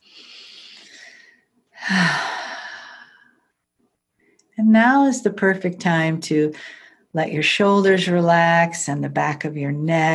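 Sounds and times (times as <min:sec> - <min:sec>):
deep meditative breaths: 0:00.0 - 0:03.4, 0:06.6 - 0:07.1
speech: 0:04.7 - 0:10.1.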